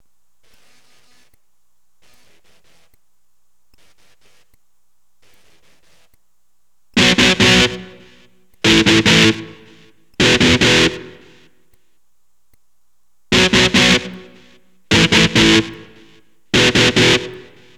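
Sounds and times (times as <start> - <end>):
electric guitar: 7.0 - 11.5, 13.3 - 17.7.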